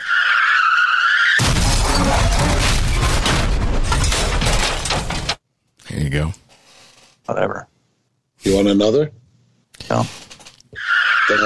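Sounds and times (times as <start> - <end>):
car tire screech: 0.0 - 3.0, 10.8 - 11.4
car crash impact: 1.3 - 5.4
crunching, clattering car wreckage: 1.4 - 5.5
speech: 6.1 - 6.4, 7.3 - 7.7, 8.4 - 9.2, 9.9 - 10.2.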